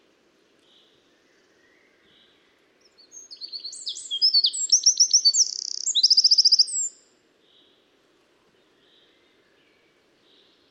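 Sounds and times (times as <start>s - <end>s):
Eurasian wren Troglodytes troglodytes singing: 2.8s - 7.1s.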